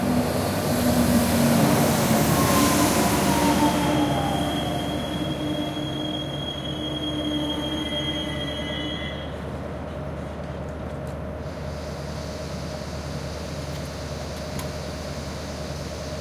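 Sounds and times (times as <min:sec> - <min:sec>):
regional train pulling into a station platform: 0:00.0 - 0:16.2
regional train wheel squeal: 0:01.6 - 0:09.5.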